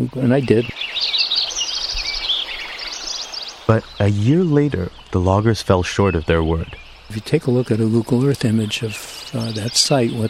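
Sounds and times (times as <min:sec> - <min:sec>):
speech: 0:00.0 - 0:00.8, 0:03.7 - 0:10.2
spring chorus of many birds singing in a meadow forest: 0:00.0 - 0:10.2.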